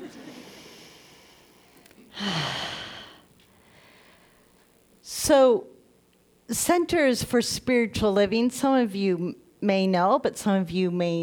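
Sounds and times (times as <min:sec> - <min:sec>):
deep breath: 0:00.2 - 0:04.5
speech: 0:05.3 - 0:05.7, 0:06.5 - 0:11.2.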